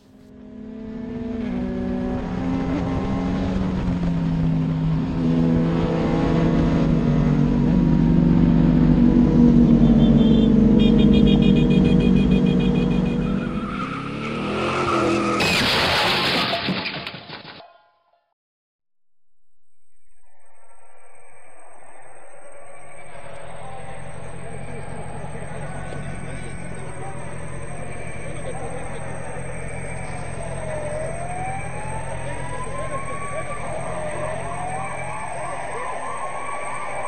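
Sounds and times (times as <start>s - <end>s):
car engine roaring as it speeds up: 0.0s - 16.8s, 21.2s - 37.0s
car tires screeching: 0.0s - 17.6s, 22.2s - 37.0s
loud car crash: 15.1s - 17.8s.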